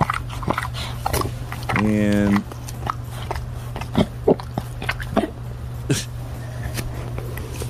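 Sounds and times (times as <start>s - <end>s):
dog licking with wet smacking licks: 0.0s - 5.4s
short nasal snorting whine from a dog: 0.0s - 7.6s
speech: 1.8s - 2.5s.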